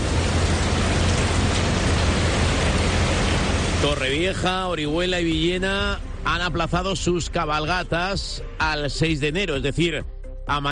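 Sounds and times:
steady rain falling in Alicante Spain: 0.0s - 6.0s
low rumble: 0.0s - 9.7s
speech: 3.8s - 10.6s.

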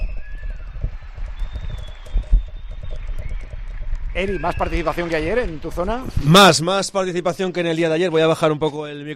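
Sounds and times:
whistles: 0.0s - 5.4s
crowd of neighbours applauding and cheering from balconies: 0.0s - 6.4s
speech: 4.2s - 9.1s.

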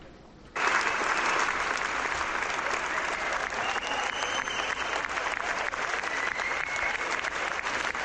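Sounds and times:
large audience applauding after a film screening: 0.6s - 8.0s
faint cheers: 2.6s - 8.0s.

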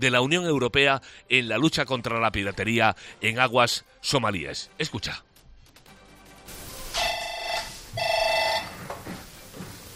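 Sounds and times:
speech: 0.0s - 5.3s
telephone ringing with bright electronic trilling bursts at a naval anti-piracy headquarters: 7.0s - 8.8s.

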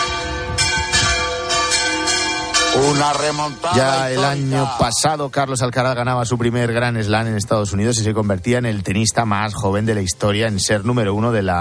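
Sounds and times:
village church bells swung in celebration: 0.0s - 4.9s
speech: 2.8s - 11.6s.

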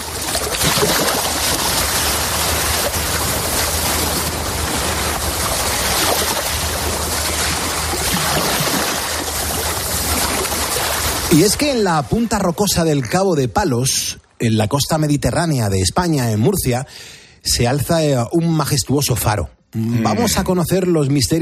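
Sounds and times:
sea waves: 0.0s - 12.8s
speech: 11.3s - 21.4s.

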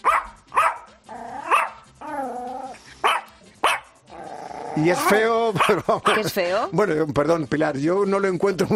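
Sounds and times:
Yorkshire Terrier barking and growling: 0.0s - 4.8s
speech: 4.8s - 8.7s.

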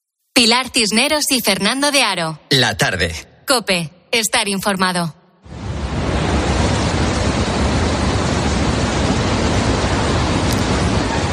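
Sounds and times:
speech: 0.4s - 5.2s
water rushing from a breached dam: 5.5s - 11.3s.

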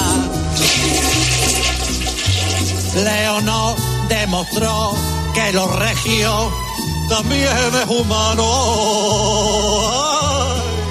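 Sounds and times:
toilet cistern flushing: 0.6s - 3.1s
speech: 3.0s - 10.3s.

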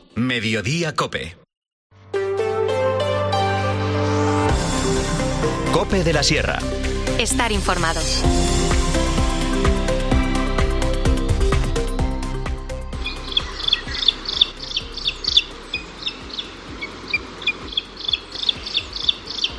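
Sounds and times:
speech: 0.2s - 1.4s, 5.8s - 8.6s
music: 1.9s - 19.5s.

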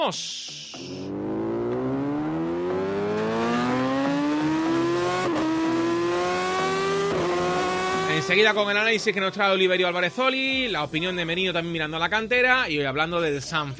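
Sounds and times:
speech: 0.0s - 1.4s, 8.2s - 13.7s
Yamaha motorcycle engine revving: 1.0s - 8.4s.

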